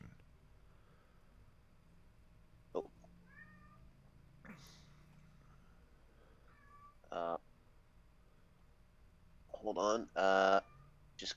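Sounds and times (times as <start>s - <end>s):
faint noise: 0.0s - 11.3s
kitten meowing: 3.3s - 3.9s
speech: 9.6s - 11.3s.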